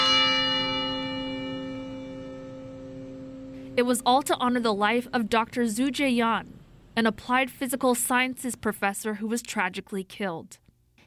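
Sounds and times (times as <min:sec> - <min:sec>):
bell tower toll: 0:00.0 - 0:05.1
speech: 0:03.8 - 0:10.6.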